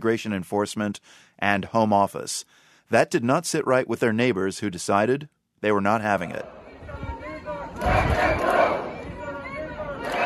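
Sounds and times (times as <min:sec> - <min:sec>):
speech: 0:00.0 - 0:06.6
crowd of protesters shouting around an immigration enforcement van: 0:06.4 - 0:10.2.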